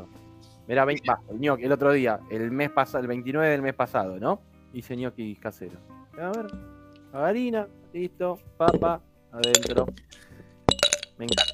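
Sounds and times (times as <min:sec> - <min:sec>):
speech: 0:00.7 - 0:10.3, 0:11.2 - 0:11.5
ice cubes clinking in a glass while preparing fernet with cola: 0:08.7 - 0:11.5.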